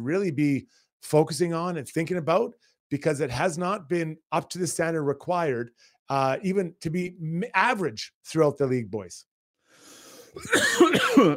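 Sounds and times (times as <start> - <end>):
speech: 0.0 - 9.3, 10.3 - 11.3
person clearing throat with a gravelly rasp: 10.4 - 11.3.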